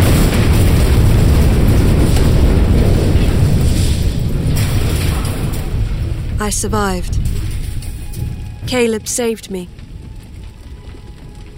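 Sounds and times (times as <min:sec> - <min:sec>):
bomb exploding: 0:00.0 - 0:09.2
speech: 0:06.5 - 0:07.2, 0:08.7 - 0:09.8.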